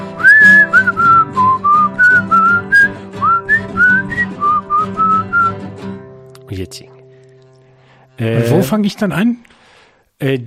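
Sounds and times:
person whistling a melody: 0:00.0 - 0:05.6
steady instrumental accompaniment: 0:00.0 - 0:07.9
speech: 0:08.2 - 0:09.5, 0:10.2 - 0:10.4.

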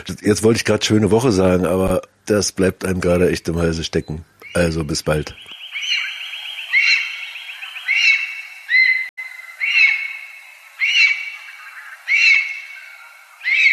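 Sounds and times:
speech: 0:00.0 - 0:05.6
lesser spotted eagle calling with high yelping notes: 0:03.2 - 0:13.7.

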